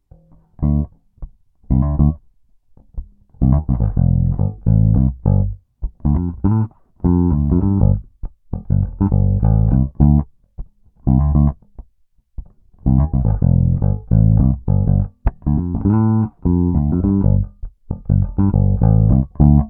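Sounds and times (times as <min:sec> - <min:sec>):
fingerstyle bass guitar with stock neck: 0:00.0 - 0:19.6.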